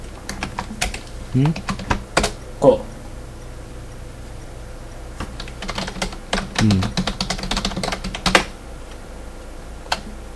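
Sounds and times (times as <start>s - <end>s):
typing on a computer keyboard: 0.2s - 2.4s, 5.2s - 8.6s
speech: 1.3s - 1.8s, 2.6s - 2.9s, 6.6s - 7.0s.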